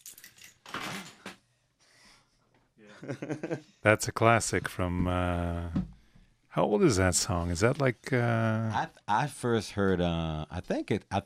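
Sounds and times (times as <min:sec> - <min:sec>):
bunch of keys rattled and shaken: 0:00.0 - 0:01.1
laughter: 0:02.9 - 0:03.6
speech: 0:03.0 - 0:05.9, 0:06.6 - 0:11.2.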